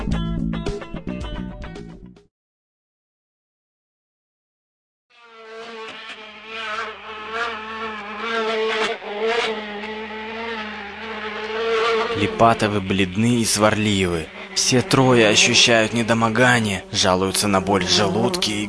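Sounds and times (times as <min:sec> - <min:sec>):
motorcycle with a sidecar engine driving: 0:05.4 - 0:18.6
speech: 0:12.2 - 0:18.6.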